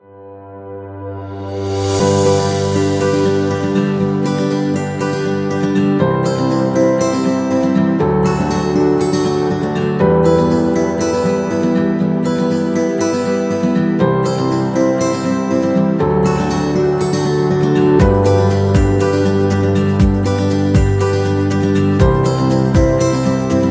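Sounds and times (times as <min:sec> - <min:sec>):
acoustic guitar commercial music: 0:00.2 - 0:23.6.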